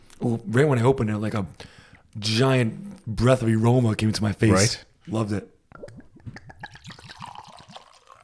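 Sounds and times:
speech: 0:00.2 - 0:05.5
drink glugging out of a bottle into a glass: 0:05.8 - 0:08.2.

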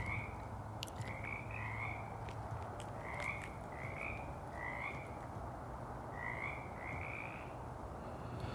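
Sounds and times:
frogs croaking: 0:00.0 - 0:05.3, 0:06.1 - 0:07.8
steady outdoor hiss: 0:07.7 - 0:08.5.

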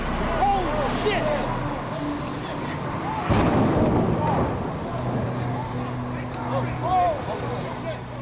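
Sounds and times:
many people shouting and crying out: 0:00.2 - 0:08.0
heavy rumbling explosion: 0:03.2 - 0:05.7.

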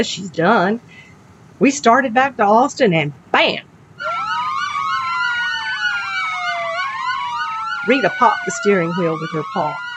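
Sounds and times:
speech: 0:00.0 - 0:01.0, 0:01.6 - 0:04.1, 0:07.9 - 0:09.8
low road rumble: 0:00.0 - 0:09.9
police car siren yelping and wailing: 0:04.0 - 0:09.9.

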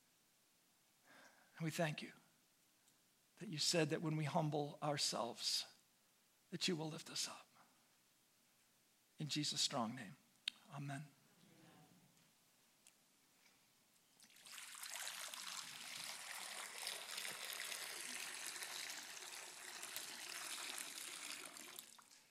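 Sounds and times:
speech: 0:01.6 - 0:02.2, 0:03.4 - 0:05.7, 0:06.5 - 0:07.5, 0:09.2 - 0:11.2
blessed water pouring for a church service: 0:14.2 - 0:22.2.

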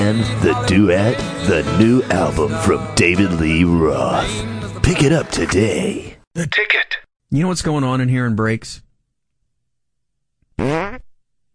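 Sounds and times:
speech: 0:00.1 - 0:08.8, 0:10.6 - 0:10.9
loud buzzy pitch-rising fart sound effect played from phone: 0:10.6 - 0:11.2.

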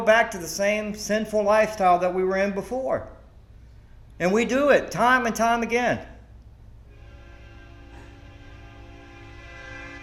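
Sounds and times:
speech: 0:00.0 - 0:03.2, 0:04.2 - 0:06.1
train passing by: 0:06.7 - 0:10.0.

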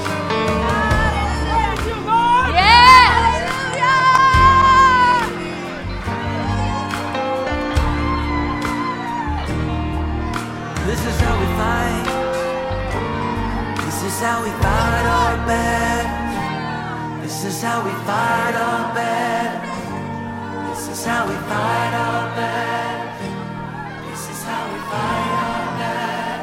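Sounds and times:
loud driving music: 0:00.0 - 0:17.0
audience shouting and whooping: 0:00.0 - 0:26.4
busy crowd din: 0:00.0 - 0:26.4.

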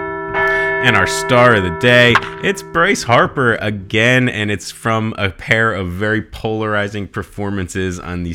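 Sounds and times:
bell ringing with a bright sustained metallic tone: 0:00.5 - 0:04.3
speech: 0:00.8 - 0:08.3.

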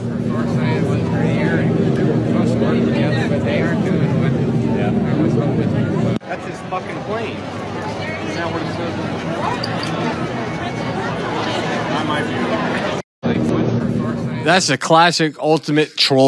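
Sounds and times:
jet airplane engine roaring overhead: 0:00.0 - 0:13.0
crowd murmuring: 0:00.0 - 0:14.6
speech: 0:14.4 - 0:16.2.

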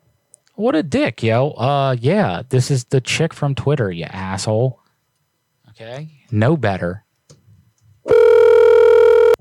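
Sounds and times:
speech: 0:00.6 - 0:04.8, 0:05.8 - 0:07.0
electronic phone ringback tone on an outgoing call: 0:08.1 - 0:09.3.

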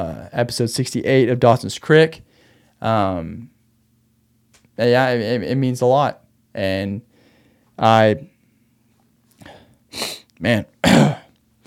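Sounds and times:
speech: 0:00.0 - 0:03.5, 0:04.8 - 0:07.1, 0:07.8 - 0:08.3, 0:09.9 - 0:11.2
throat clearing caused by mucus: 0:10.0 - 0:11.4.

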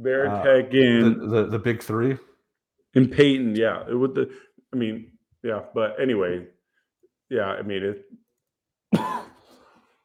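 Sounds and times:
speech: 0:00.0 - 0:02.3, 0:02.9 - 0:06.6, 0:07.3 - 0:08.2
harsh cough with raspy throat-clearing: 0:08.9 - 0:09.8.

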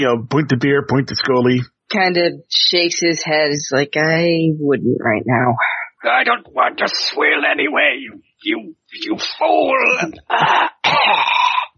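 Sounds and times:
speech: 0:00.0 - 0:11.7
phlegmy coughing: 0:09.9 - 0:11.7.

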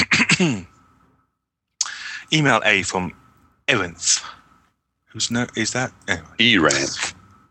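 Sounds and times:
throat clearing: 0:00.0 - 0:00.7
speech: 0:02.3 - 0:04.4, 0:05.1 - 0:07.2.

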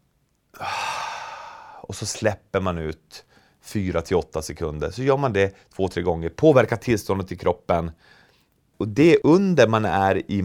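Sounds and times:
deep breath in through the nose: 0:00.6 - 0:01.9, 0:08.0 - 0:08.5
speech: 0:01.9 - 0:08.2, 0:08.8 - 0:10.4.

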